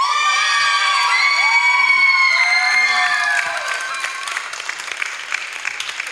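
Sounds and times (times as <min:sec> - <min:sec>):
dance group of young voices shouting a cheer: 0:00.0 - 0:04.6
people clapping: 0:00.0 - 0:06.1
scattered crowd noise: 0:00.0 - 0:06.1.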